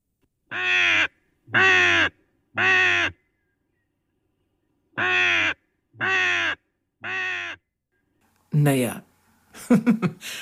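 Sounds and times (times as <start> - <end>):
raven croaking: 0.5 - 3.3, 5.0 - 7.6
speech: 1.5 - 1.9, 9.7 - 10.4
laughter: 9.6 - 10.4.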